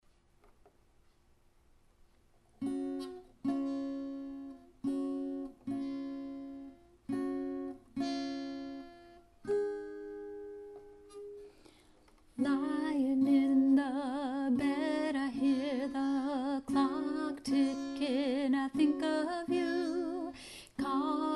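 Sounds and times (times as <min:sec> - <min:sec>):
guitar: 0:02.4 - 0:21.3
solo vocal: 0:12.4 - 0:21.3.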